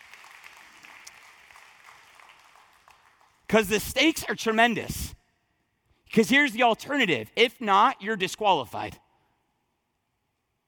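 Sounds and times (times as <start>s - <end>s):
audience applause: 0.0s - 3.4s
speech: 3.5s - 5.2s, 6.1s - 9.0s.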